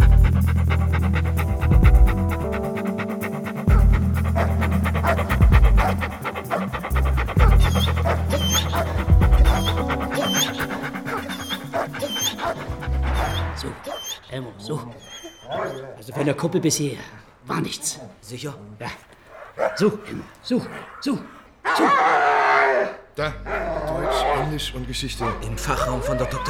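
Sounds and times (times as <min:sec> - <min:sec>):
dog panting: 0:00.0 - 0:18.2, 0:18.8 - 0:21.5, 0:25.2 - 0:26.4
speech: 0:16.3 - 0:22.2, 0:22.8 - 0:26.4.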